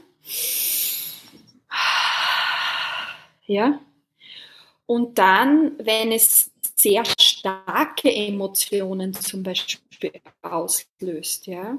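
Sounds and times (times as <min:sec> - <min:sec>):
deep breath in and out as a breathing exercise: 0:00.2 - 0:03.4, 0:04.2 - 0:04.9
speech: 0:03.5 - 0:03.9, 0:04.9 - 0:11.7.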